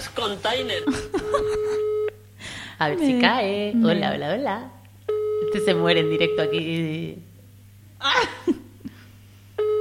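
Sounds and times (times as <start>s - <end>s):
speech: 0.2s - 2.0s, 2.8s - 4.8s, 5.5s - 7.3s, 8.0s - 8.6s
laughter: 0.8s - 1.9s, 8.0s - 9.1s
telephone ringback tone of an unanswered call: 1.1s - 2.1s, 5.1s - 6.7s, 9.6s - 9.7s.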